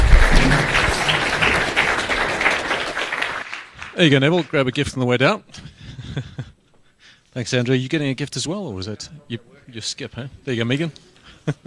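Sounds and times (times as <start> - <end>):
crowd applauding: 0.0 - 4.8
speech: 4.0 - 6.5, 7.4 - 11.6.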